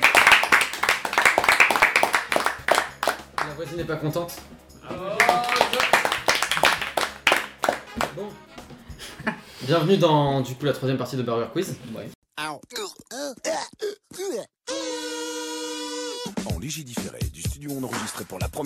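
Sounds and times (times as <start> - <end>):
several people clapping hands: 0.0 - 3.6, 5.0 - 8.2
speech: 3.6 - 6.0, 8.0 - 8.7, 9.6 - 12.2, 16.7 - 18.6.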